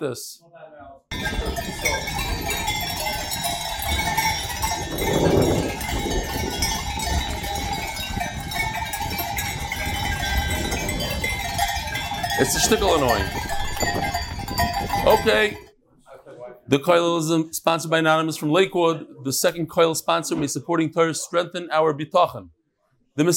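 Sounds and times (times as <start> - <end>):
speech: 0.0 - 0.5, 12.4 - 14.1, 15.0 - 15.7, 16.7 - 22.6, 23.2 - 23.3
cowbells clanging on a herd of cows on a farm: 1.1 - 15.7.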